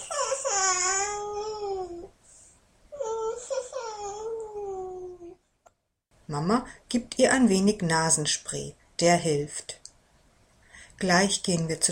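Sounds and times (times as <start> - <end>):
small child whimpering and crying with a blocked nose: 0.0 - 2.1, 3.0 - 5.4
speech: 6.3 - 9.8, 11.0 - 11.9.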